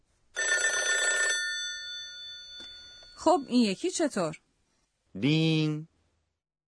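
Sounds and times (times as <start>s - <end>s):
old-fashioned telephone bell ringing: 0.4s - 3.6s
speech: 3.2s - 4.4s, 5.2s - 5.9s.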